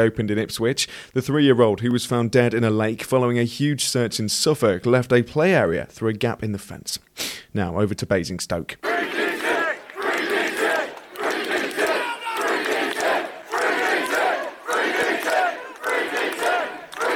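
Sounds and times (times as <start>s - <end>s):
speech: 0.0s - 9.4s
crowd of demonstrators chanting outside a police centre: 8.8s - 17.1s.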